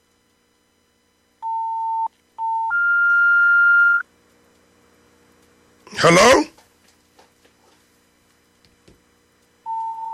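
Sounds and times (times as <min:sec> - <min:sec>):
phone line hissing while caller is on hold: 0:01.4 - 0:04.1, 0:09.6 - 0:10.1
steady unbroken telephone tone: 0:01.4 - 0:04.1, 0:09.6 - 0:10.1
speech: 0:06.0 - 0:06.5.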